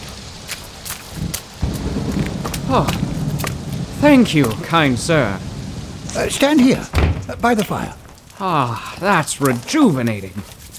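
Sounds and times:
steady rain hissing in a thunderstorm: 0:00.0 - 0:10.7
deep thunder rumbling in a thunderstorm: 0:01.2 - 0:09.8
speech: 0:02.7 - 0:03.1, 0:04.0 - 0:05.5, 0:06.1 - 0:10.6.

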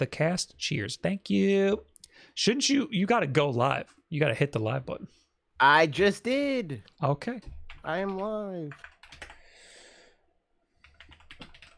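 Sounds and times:
speech: 0:00.0 - 0:09.2
typing on a computer keyboard: 0:07.7 - 0:09.5, 0:10.8 - 0:11.7.

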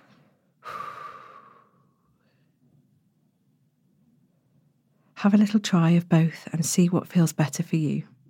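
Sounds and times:
long breath blown out through pursed lips: 0:00.0 - 0:02.5
speech: 0:05.2 - 0:08.2.

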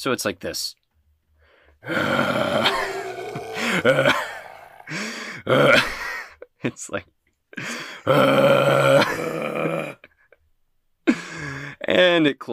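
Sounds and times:
speech: 0:00.0 - 0:00.8, 0:01.8 - 0:02.9, 0:03.7 - 0:04.3, 0:04.9 - 0:06.0, 0:06.6 - 0:09.8, 0:11.9 - 0:12.5
person voicing guttural roars and growls imitating a giant crab: 0:01.8 - 0:06.0, 0:08.0 - 0:10.0.

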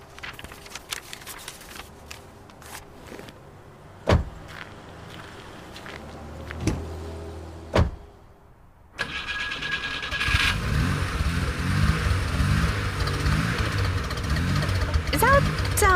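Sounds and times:
old car engine cranking and struggling to start: 0:09.0 - 0:15.9.

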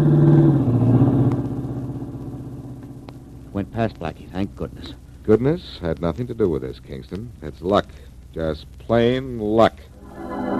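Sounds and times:
car engine humming while driving along a road: 0:00.0 - 0:08.3
speech: 0:03.8 - 0:09.9.

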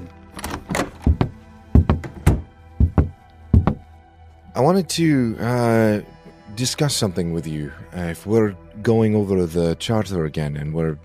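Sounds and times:
firm knocking on a door: 0:00.7 - 0:03.8
speech: 0:04.6 - 0:11.0.

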